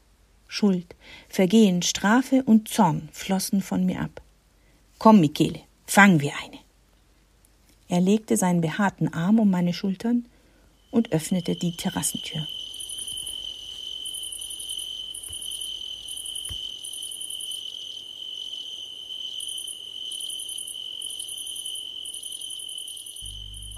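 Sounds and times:
speech: 0.6 - 4.2, 5.0 - 6.6, 7.9 - 10.3, 10.9 - 12.6
crickets chirping in a high trilling chorus: 10.3 - 23.7.

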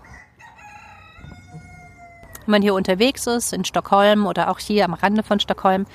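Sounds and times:
rooster crowing: 0.0 - 2.5
speech: 2.5 - 5.9.

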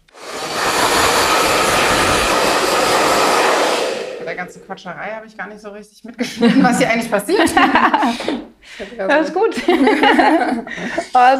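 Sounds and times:
hair dryer blowing: 0.0 - 4.7
speech: 4.8 - 11.3
laughter: 6.2 - 8.4, 9.4 - 11.3.

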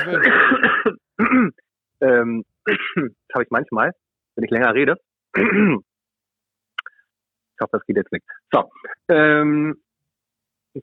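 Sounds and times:
speech: 0.0 - 0.6, 2.2 - 5.9, 7.6 - 9.8
person clearing throat: 0.0 - 1.6, 5.4 - 5.8
person coughing: 0.0 - 1.6.

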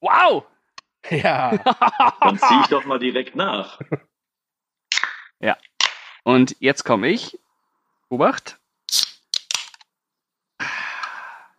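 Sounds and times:
speech: 0.2 - 4.1, 5.4 - 7.4, 8.1 - 9.1
laughter: 1.0 - 3.0
swing-top beer bottle popping open: 4.9 - 6.2, 8.9 - 9.8.

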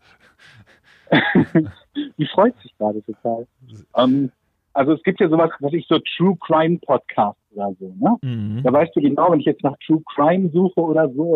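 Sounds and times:
dog panting: 0.0 - 1.8
laughter: 0.4 - 3.0, 3.7 - 4.2, 8.2 - 8.9
speech: 1.1 - 11.3.

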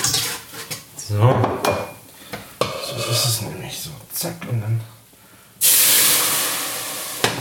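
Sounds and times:
speech: 1.1 - 1.8, 3.0 - 5.0
litre of sauce sizzling in a hot pan: 5.6 - 7.3.

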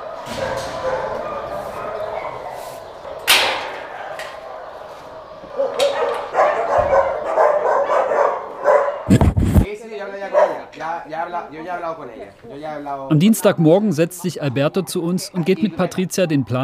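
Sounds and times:
dogs barking in shelter kennel enclosures: 0.0 - 9.1, 10.1 - 10.8
speech: 11.4 - 16.6.

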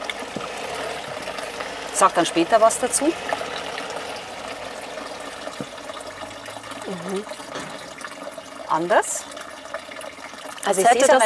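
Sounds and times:
water pouring into a glass for tasting: 0.0 - 11.2
speech: 2.0 - 3.4, 7.1 - 7.4, 8.7 - 9.2, 10.6 - 11.2.

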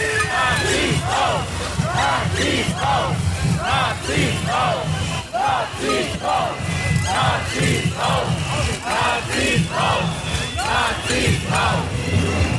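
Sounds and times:
large crowd booing: 0.0 - 12.5.

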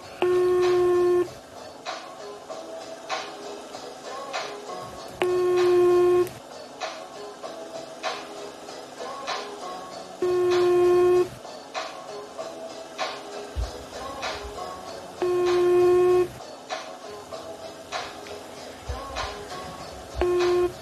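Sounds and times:
electronic telephone beeps during a call: 0.2 - 1.3, 5.2 - 6.3, 10.2 - 11.3, 15.2 - 16.3, 20.2 - 20.8.

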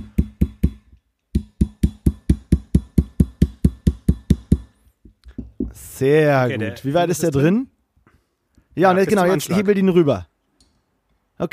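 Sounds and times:
hammering with a multitool: 0.0 - 5.8
speech: 6.0 - 7.7, 8.8 - 10.3.

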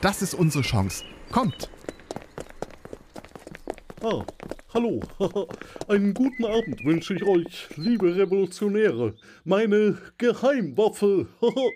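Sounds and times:
speech: 0.0 - 1.9, 4.0 - 11.7
guards running footsteps: 1.3 - 8.9
laughter: 4.9 - 6.5, 11.3 - 11.7.

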